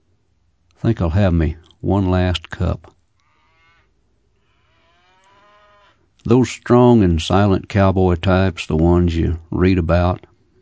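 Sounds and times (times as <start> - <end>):
speech: 0.8 - 3.0, 6.2 - 10.3
old cow bawling: 3.2 - 3.9, 4.5 - 6.0.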